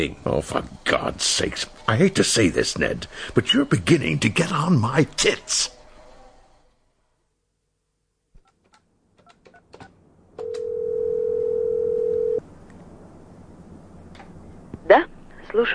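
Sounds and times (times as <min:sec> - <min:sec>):
speech: 0:00.0 - 0:05.8, 0:14.9 - 0:15.7
single long steady telephone ring tone on the line: 0:10.4 - 0:12.4.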